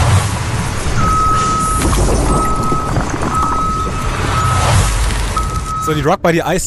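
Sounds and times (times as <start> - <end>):
tow truck reversing alarm beeps at a towing company: 1.0 - 6.0
speech: 5.9 - 6.6.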